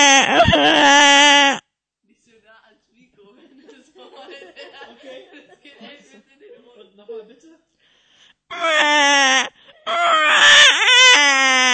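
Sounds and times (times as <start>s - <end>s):
person imitating a crying baby: 0.0s - 1.6s, 8.5s - 11.7s
laughter: 3.3s - 7.1s.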